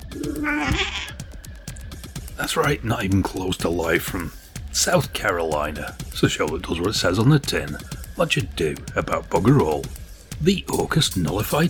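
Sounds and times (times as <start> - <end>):
steady rhythmic music with repeated percussive beats: 0.0 - 11.6
drawn-out cat meow: 0.2 - 1.2
speech: 0.4 - 1.1, 2.4 - 11.6.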